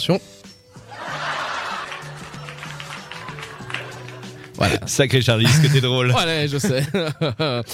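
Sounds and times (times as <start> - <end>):
speech: 0.0 - 1.1, 4.6 - 7.7
sitcom canned laughter track from a studio audience: 0.9 - 4.8, 6.5 - 7.7.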